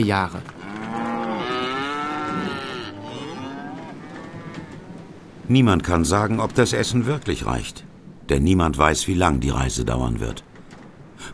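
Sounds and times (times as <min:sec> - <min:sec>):
speech: 0:00.0 - 0:00.5, 0:05.5 - 0:10.5
cows mooing: 0:00.6 - 0:05.1.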